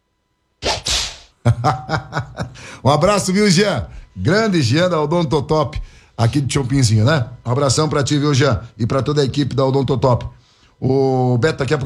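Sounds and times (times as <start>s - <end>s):
loud whip cracks with a hissing tail: 0.6s - 1.3s
short burst of voiced buzzing sound: 0.6s - 11.8s
laughter: 1.4s - 3.0s
speech: 1.5s - 11.8s.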